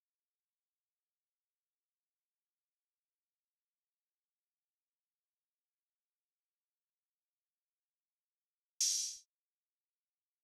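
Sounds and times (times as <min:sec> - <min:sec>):
92 BPM drum loop: 0:08.8 - 0:09.2
open hi-hat: 0:08.8 - 0:09.3.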